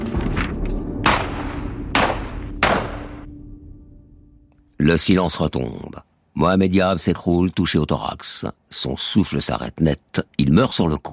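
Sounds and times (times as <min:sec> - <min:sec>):
low steady hum: 0:00.0 - 0:07.6
submachine gun firing a three-round burst: 0:01.1 - 0:03.2
speech: 0:04.8 - 0:11.1.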